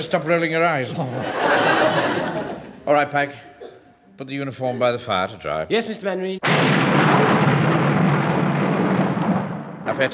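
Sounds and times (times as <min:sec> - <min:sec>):
speech: 0:00.0 - 0:03.5, 0:04.2 - 0:07.4, 0:10.0 - 0:10.1
laughter: 0:00.8 - 0:03.0, 0:04.5 - 0:05.3
thunder from a storm rumbling: 0:06.4 - 0:10.1.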